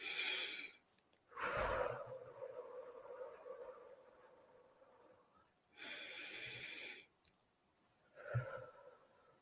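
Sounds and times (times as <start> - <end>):
person taking slow deep breaths during a guided meditation: 0.0 - 2.6, 5.7 - 7.2, 8.1 - 9.3.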